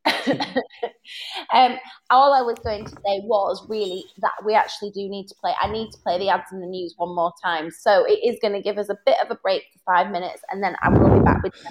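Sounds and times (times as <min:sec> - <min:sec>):
person coughing: 0:00.1 - 0:00.7
speech: 0:01.5 - 0:11.7.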